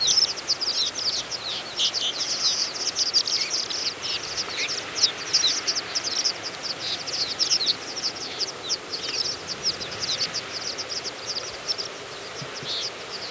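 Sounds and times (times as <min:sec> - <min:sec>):
constant background noise: 0:00.0 - 0:13.3
horned lark flock twittering: 0:00.0 - 0:13.3.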